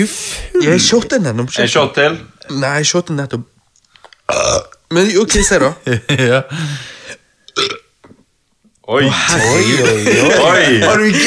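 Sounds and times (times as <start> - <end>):
speech: 0.0 - 3.5, 4.3 - 6.9, 8.9 - 11.2
loud wet burp: 4.3 - 4.8, 7.5 - 8.3
short gurgling belch: 4.3 - 4.8, 7.5 - 8.2
laughter: 5.6 - 6.6, 9.1 - 11.2.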